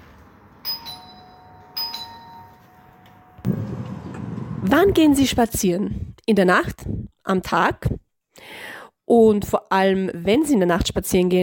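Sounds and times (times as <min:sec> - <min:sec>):
two-tone ding-dong doorbell chime: 0:00.6 - 0:03.4
speech: 0:04.6 - 0:11.4.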